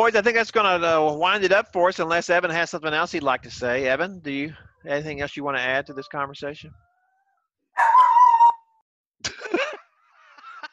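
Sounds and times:
speech: 0.0s - 6.9s
dog giving a drawn-out whining bark: 7.8s - 8.8s
laughter: 9.3s - 10.7s.

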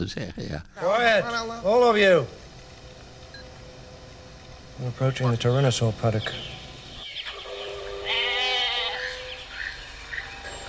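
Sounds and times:
speech: 0.0s - 2.4s, 4.8s - 6.6s
faint hum: 0.0s - 10.6s
goat bleating: 8.0s - 9.2s.

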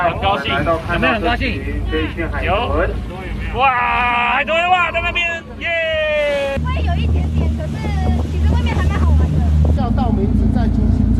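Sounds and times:
boat engine rumble on the ocean: 0.0s - 11.1s
buffeting wind on the ocean: 0.0s - 11.1s
passengers on a boat shouting and whooping in glee: 3.6s - 6.6s.

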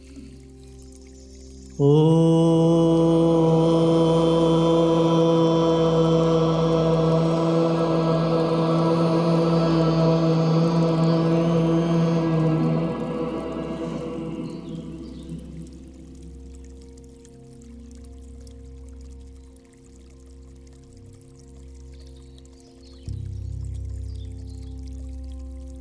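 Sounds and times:
group chanting a long Om to honor the earth element: 1.8s - 16.3s.

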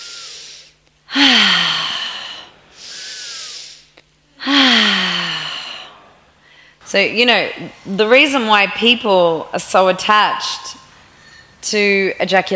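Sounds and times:
person breathing as a lovemaking exercise: 0.0s - 6.8s, 10.8s - 11.6s
speech: 6.9s - 10.8s, 11.6s - 12.5s.

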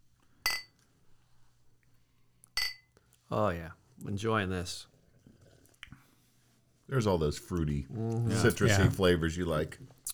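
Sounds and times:
quiet hum: 0.0s - 10.1s
beer glasses clinking in a toast: 0.5s - 0.7s, 8.3s - 9.1s
speech: 3.3s - 4.9s, 6.9s - 10.0s
laughter: 7.7s - 9.8s.

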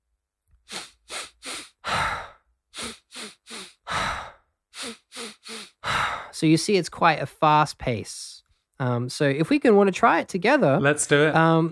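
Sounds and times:
quick sharp sniffs through the nose in a breathing exercise: 0.7s - 6.2s
long relaxed breathy sigh out through the mouth: 0.7s - 6.3s
speech: 6.4s - 11.7s.

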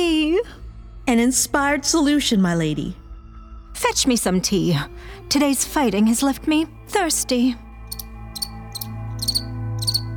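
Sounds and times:
speech: 0.4s - 3.0s, 3.8s - 7.6s
cricket chirping: 7.9s - 10.1s.

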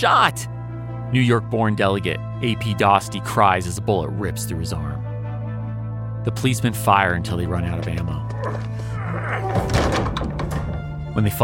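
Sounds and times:
speech: 0.0s - 0.5s, 1.1s - 5.0s, 6.2s - 10.6s, 11.2s - 11.4s
heavy door dragging and being pulled shut: 7.8s - 11.2s
clattering knock: 9.4s - 11.2s.

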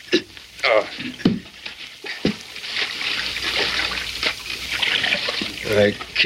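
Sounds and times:
human vocal sounds: 0.0s - 1.2s
knocks and splashes of men lifting something into a creek to wash rock for gold: 0.9s - 6.2s.

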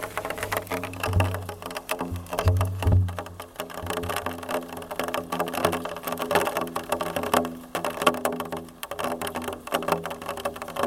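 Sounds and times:
rain on a metal drum: 0.0s - 10.8s
low resonant booms from the metal drum: 2.4s - 3.2s.

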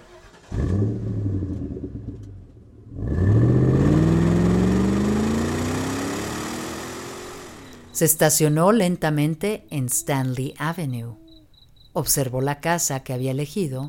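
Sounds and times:
car engine starting, idling roughly and revving as it pulls away: 0.0s - 8.2s
speech: 8.0s - 11.2s, 12.0s - 13.8s.

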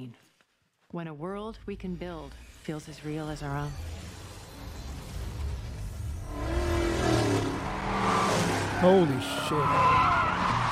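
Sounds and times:
speech: 0.9s - 4.0s, 8.8s - 10.3s
car engine revving: 5.2s - 10.6s.

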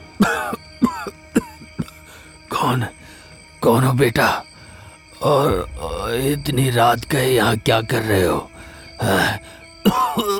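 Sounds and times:
elderly man coughing: 0.2s - 2.0s, 9.8s - 10.3s
speech: 2.6s - 3.0s, 3.6s - 4.5s, 5.2s - 10.3s.

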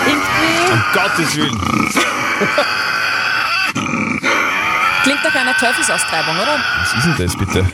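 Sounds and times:
laughter: 0.0s - 3.2s, 5.0s - 7.7s
Tasmanian devil growling and screeching: 0.0s - 7.7s
speech: 0.9s - 2.8s, 5.0s - 7.7s.

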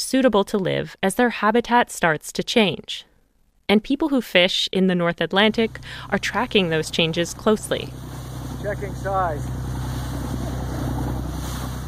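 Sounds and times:
speech: 0.0s - 3.1s, 3.7s - 9.6s
fishing boat engine rumble on open ocean: 5.4s - 11.8s
water noise on open ocean: 5.5s - 11.8s
wind on open ocean: 5.5s - 11.8s.

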